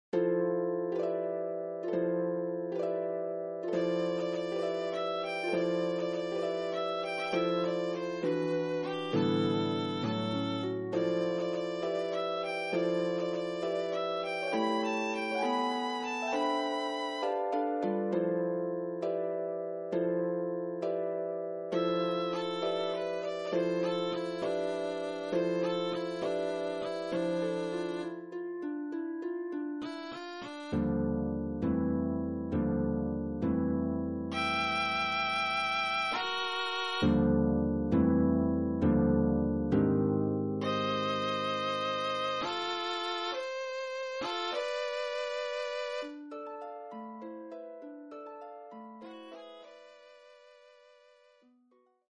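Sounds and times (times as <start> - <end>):
harp playing a sonatina: 0.0 - 52.0
violin playing a sonatina: 3.7 - 17.6, 21.7 - 28.3, 34.3 - 37.3, 40.6 - 46.2, 49.0 - 51.2.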